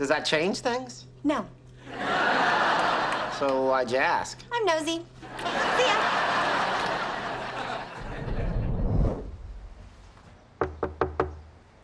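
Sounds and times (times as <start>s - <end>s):
speech: 0.0s - 2.3s, 3.4s - 6.2s
dense noise: 0.0s - 11.8s
laughter: 1.8s - 3.7s, 5.2s - 8.7s
knocking on a door: 10.6s - 11.5s.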